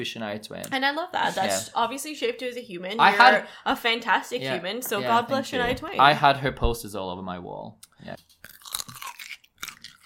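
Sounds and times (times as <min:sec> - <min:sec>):
speech: 0:00.0 - 0:08.3
chewing pickled gherkin: 0:08.1 - 0:10.0
wet crunching of someone biting into a pickled gherkin: 0:08.3 - 0:10.0.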